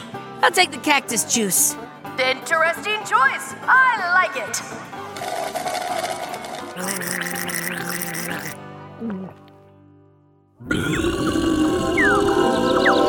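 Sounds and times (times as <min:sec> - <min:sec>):
speech: 0:00.4 - 0:04.9, 0:06.8 - 0:09.4, 0:10.6 - 0:11.5
long loud rumbling raspy burp: 0:06.8 - 0:08.5, 0:10.6 - 0:12.9.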